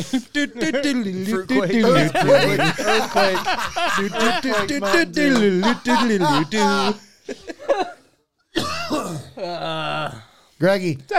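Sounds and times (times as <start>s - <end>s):
speech: 0.0s - 8.0s, 9.4s - 11.1s
laughter: 0.0s - 8.2s
person coughing after drinking soda: 7.8s - 9.5s
person hacking and clearing throat after drinking soda: 8.5s - 10.0s.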